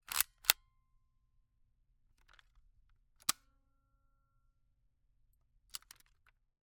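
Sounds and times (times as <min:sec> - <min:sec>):
Kodak Extramax plastic and metal pocket 110 film camera advancing film: 0:00.1 - 0:00.6.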